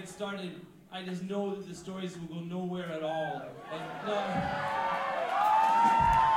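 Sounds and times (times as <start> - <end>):
speech: 0.0 - 5.0
audience cheering and whooping: 3.3 - 6.3.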